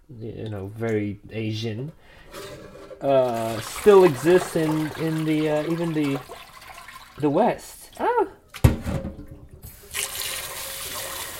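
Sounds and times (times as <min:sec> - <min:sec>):
speech: 0:00.1 - 0:06.4, 0:07.2 - 0:08.4
water pouring into a vessel: 0:03.0 - 0:07.4, 0:09.7 - 0:11.3.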